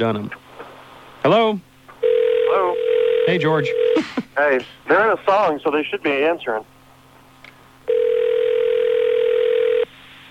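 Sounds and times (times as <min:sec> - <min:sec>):
speech: 0:00.0 - 0:00.4, 0:01.2 - 0:01.7, 0:03.2 - 0:06.7
telephone dial tone while calling out: 0:02.0 - 0:04.0, 0:07.9 - 0:09.9.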